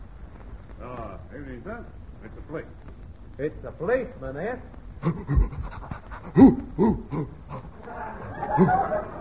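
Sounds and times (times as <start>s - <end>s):
speech: 1.4s - 7.4s, 8.6s - 8.9s
bloodhound panting and snuffling: 5.0s - 6.4s
breathy rustling: 5.0s - 8.6s
laughter: 7.7s - 9.2s.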